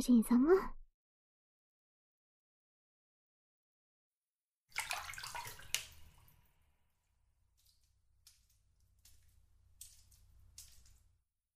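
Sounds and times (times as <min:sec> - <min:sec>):
hot water filling a bathtub: 0:04.7 - 0:11.2.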